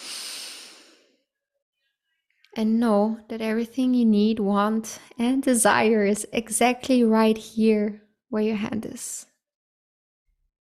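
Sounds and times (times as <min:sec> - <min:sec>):
deep breath in during a closing relaxation moment: 0:00.0 - 0:01.2
speech: 0:02.6 - 0:09.3.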